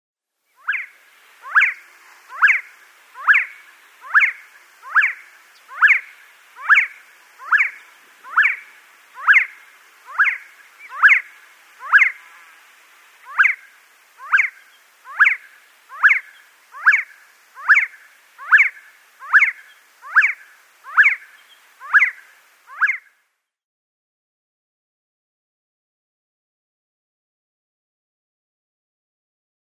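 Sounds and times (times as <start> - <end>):
male Sand Partridge display call: 0.6 - 12.4, 13.2 - 23.1.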